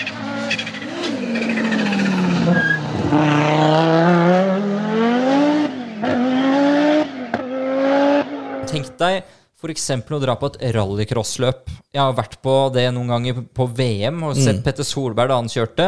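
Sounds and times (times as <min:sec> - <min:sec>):
rally car tires skidding and scrabbling over a loose rally stage: 0:00.0 - 0:08.6
rally car engine roaring on a loose rally stage in the Alps: 0:00.0 - 0:09.0
speech: 0:09.0 - 0:15.8.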